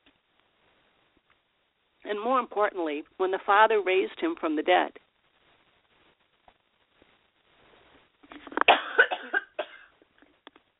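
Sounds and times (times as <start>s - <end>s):
speech: 2.0s - 5.0s
harsh rough coughing: 8.7s - 10.0s.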